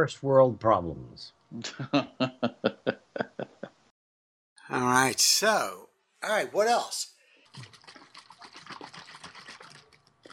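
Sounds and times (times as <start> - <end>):
speech: 0.0 - 2.7, 5.0 - 7.1
laughter: 1.6 - 3.7
water mixed with BCAAs sloshing in a closed water bottle being shaken: 7.4 - 10.3.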